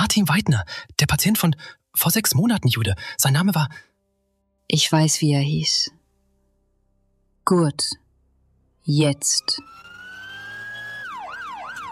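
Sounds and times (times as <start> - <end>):
speech: 0.1 - 3.9, 4.7 - 6.0, 7.4 - 8.0, 8.8 - 9.8
ambulance siren on a rescue vehicle racing onto a motorway in rain: 9.2 - 11.8.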